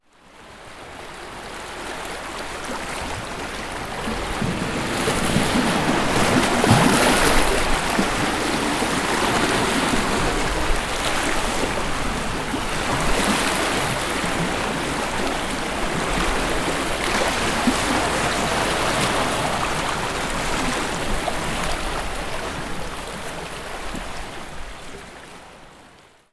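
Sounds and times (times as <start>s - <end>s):
swirling waves on rocky coast: 2.0s - 24.2s.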